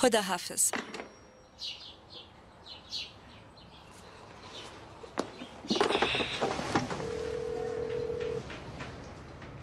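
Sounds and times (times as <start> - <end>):
speech: 0.0 - 1.0, 1.6 - 1.8
birds chirping: 1.0 - 6.6
phone ringing out unanswered with an electronic ring tone: 7.0 - 8.4.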